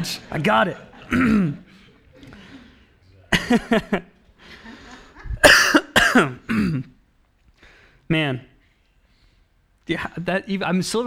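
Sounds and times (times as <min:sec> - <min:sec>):
speech: 0:00.0 - 0:01.7, 0:03.5 - 0:04.1, 0:05.4 - 0:06.9, 0:08.1 - 0:08.5, 0:09.9 - 0:11.0
throaty voiced sounds: 0:00.0 - 0:03.8
laughter: 0:00.0 - 0:06.5
person coughing: 0:00.9 - 0:04.1, 0:05.1 - 0:06.9.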